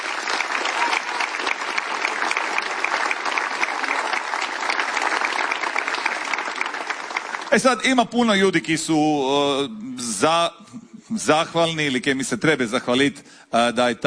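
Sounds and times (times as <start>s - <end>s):
audience applause at a song festival: 0.0s - 8.1s
speech: 7.5s - 14.0s.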